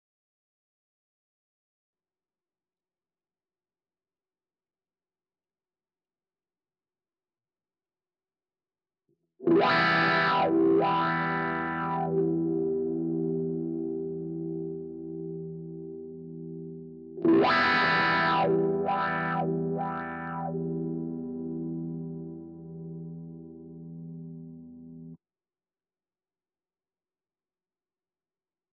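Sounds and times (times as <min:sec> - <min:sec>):
wah guitar fill: 0:09.5 - 0:24.2.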